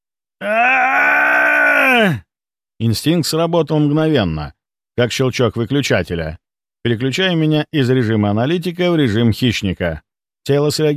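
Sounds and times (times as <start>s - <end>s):
speech: 0.4s - 0.9s, 2.8s - 10.9s
heart-rending, almost inhuman scream in a hospital corridor: 0.4s - 2.2s.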